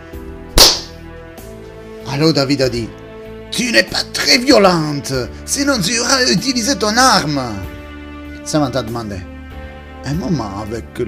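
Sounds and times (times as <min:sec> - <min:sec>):
slap across the face: 0:00.6 - 0:01.0
speech: 0:02.1 - 0:07.7, 0:08.5 - 0:09.3, 0:10.0 - 0:11.0.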